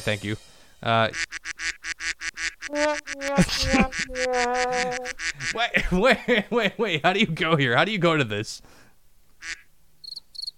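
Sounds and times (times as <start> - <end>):
speech: 0.0 - 2.1, 2.7 - 8.8
duck quacking sound effect from a voice chat server soundboard: 1.1 - 5.6, 9.4 - 9.7
honking calls: 1.1 - 5.7, 9.4 - 9.7
laughter: 3.2 - 7.0.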